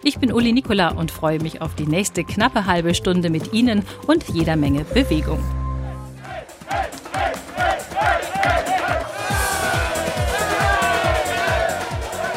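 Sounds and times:
speech: 0:00.0 - 0:05.6
spectators cheering along a cycling tour route: 0:05.8 - 0:12.3
rhythmic clapping: 0:06.2 - 0:12.3.

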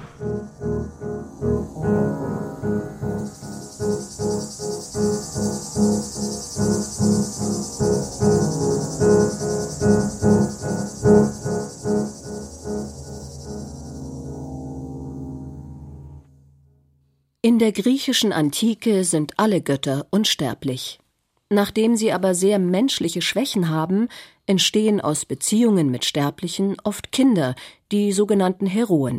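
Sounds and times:
cicada chirping: 0:00.0 - 0:16.2
speech: 0:00.2 - 0:00.6, 0:17.5 - 0:29.1.

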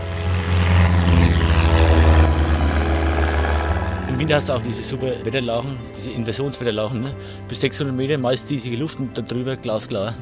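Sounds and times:
small propeller airplane engine revving for takeoff: 0:00.0 - 0:07.4
speech: 0:04.3 - 0:10.1.

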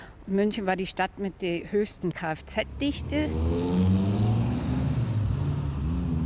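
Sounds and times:
speech: 0:00.3 - 0:04.1
busy city car traffic rumbling: 0:02.2 - 0:06.2
engine droning and revving: 0:02.6 - 0:06.2.

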